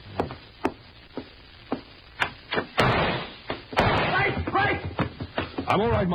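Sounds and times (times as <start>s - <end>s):
door thud: 2.6s - 5.1s
sharp knocks on a hotel room door: 3.8s - 5.8s
speech: 5.7s - 6.1s.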